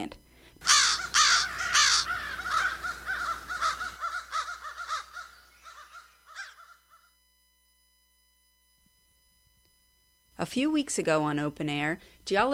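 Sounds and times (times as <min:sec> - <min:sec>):
crows cawing: 0:00.6 - 0:07.2
speech: 0:10.5 - 0:12.5.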